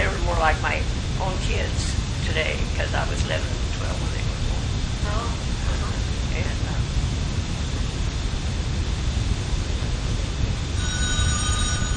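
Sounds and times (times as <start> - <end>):
loud steady rumbling noise: 0.0 - 11.9
speech: 0.4 - 4.3, 5.0 - 6.9
telephone ringing: 10.8 - 11.9.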